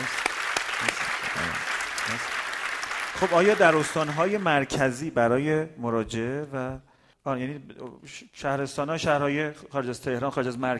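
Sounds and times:
audience applause: 0:00.0 - 0:04.7
speech: 0:03.2 - 0:10.7.

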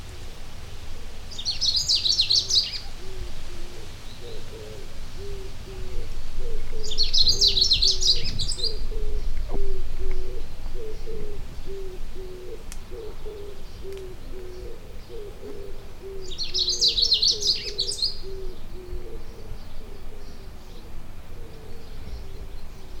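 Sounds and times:
soft low hooting notes from another bird: 0:00.1 - 0:22.9
Long-tailed rosefinch Carpodacus sibiricus twittering song: 0:01.3 - 0:03.0, 0:05.2 - 0:20.8.

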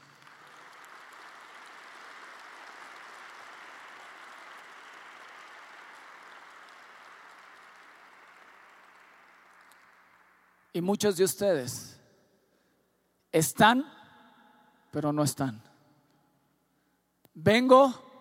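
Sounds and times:
large crowd applauding at a Spanish-language religious service: 0:00.0 - 0:10.8
speech: 0:10.8 - 0:11.9, 0:13.4 - 0:14.0, 0:14.9 - 0:15.7, 0:17.4 - 0:18.0.

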